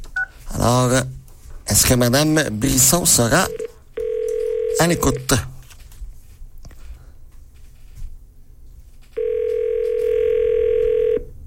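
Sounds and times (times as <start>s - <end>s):
speech: 0.6s - 3.6s, 4.8s - 5.5s
telephone dial tone on an outgoing call to a listener: 3.5s - 5.2s, 9.2s - 11.3s.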